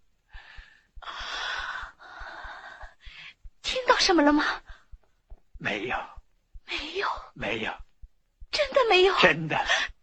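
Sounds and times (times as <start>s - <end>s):
soft regular thumps: 0.0s - 9.0s
deep breathing of a recovering king during a physician's examination: 0.3s - 3.6s
speech: 4.0s - 4.7s, 5.6s - 6.2s, 7.4s - 7.8s, 8.8s - 9.9s.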